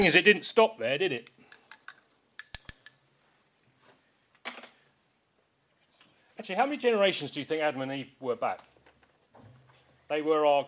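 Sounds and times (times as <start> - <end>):
speech: 0.0 - 1.4, 6.4 - 8.7, 10.1 - 10.6
spoon clinking against a container while stirring: 1.2 - 3.1.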